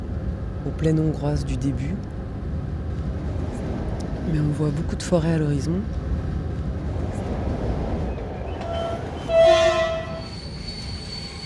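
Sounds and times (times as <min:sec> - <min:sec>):
train arriving at Bucharest Nord station: 0:00.0 - 0:11.4
speech: 0:00.6 - 0:02.2, 0:04.2 - 0:06.1
train horn blast: 0:08.6 - 0:10.3.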